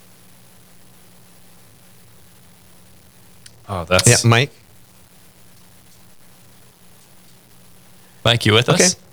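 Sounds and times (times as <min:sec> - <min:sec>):
phone line static hiss on a dropped line: 0:00.0 - 0:09.1
speech: 0:03.7 - 0:04.6, 0:08.2 - 0:09.0.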